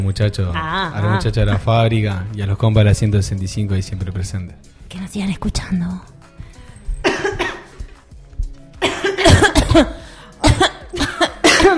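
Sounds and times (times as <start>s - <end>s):
speech: 0.0s - 6.1s, 9.7s - 10.0s
smoker coughing harshly: 7.0s - 7.9s, 8.8s - 11.7s.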